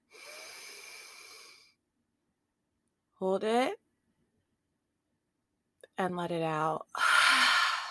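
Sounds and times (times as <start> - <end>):
deep breath in: 0.1 - 1.8, 7.0 - 7.9
speech: 3.2 - 3.8, 6.0 - 7.0.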